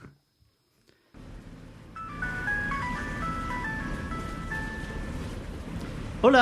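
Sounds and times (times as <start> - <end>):
moving bus engine rumbling: 1.2 - 6.3
tinny electronic melody from a mobile phone loudspeaker on a bus: 1.8 - 5.6
speech: 6.2 - 6.4.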